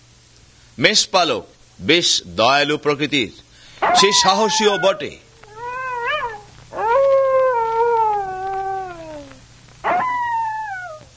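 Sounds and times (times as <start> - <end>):
speech: 0.8 - 5.2
wolf howls: 3.8 - 11.1.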